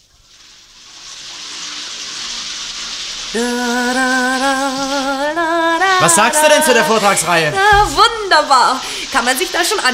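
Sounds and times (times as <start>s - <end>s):
shower spraying water: 0.0s - 9.9s
speech: 3.3s - 5.4s, 6.0s - 9.9s
person singing a held wavering tone: 3.3s - 8.2s.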